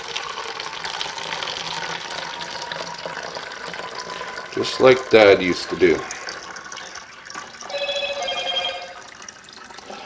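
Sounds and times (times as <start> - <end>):
running water rinsing a stir stick: 0.0 - 10.0
speech: 4.6 - 6.2
electronic phone message notification chimes: 7.7 - 9.1.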